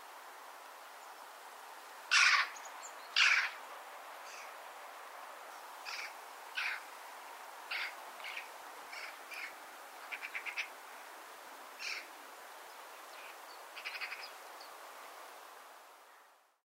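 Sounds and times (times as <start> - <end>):
Eurasian magpie Pica pica making rasping scratchy calls: 2.1 - 2.5, 3.2 - 3.6, 5.9 - 6.8, 7.7 - 10.7, 11.8 - 12.1, 13.8 - 14.3.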